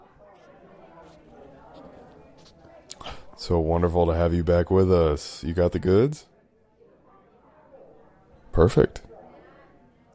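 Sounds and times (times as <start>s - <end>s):
footsteps thumping: 0.0s - 3.1s
busy murmur of voices: 0.0s - 10.1s
speech: 3.4s - 6.3s, 8.6s - 9.1s.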